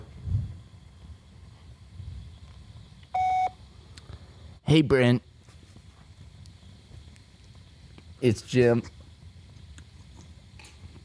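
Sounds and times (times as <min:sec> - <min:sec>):
voicemail prompt electronic beep: 0:03.1 - 0:03.6
speech: 0:04.7 - 0:05.3, 0:08.2 - 0:09.0.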